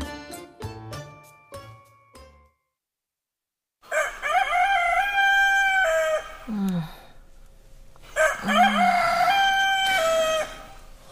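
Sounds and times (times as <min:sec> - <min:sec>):
rooster crowing: 0:03.9 - 0:06.5, 0:08.1 - 0:10.8.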